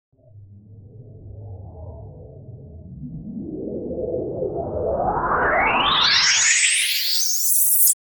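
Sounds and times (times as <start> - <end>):
time travel portal opening with a distorted sound: 3.4 - 8.0.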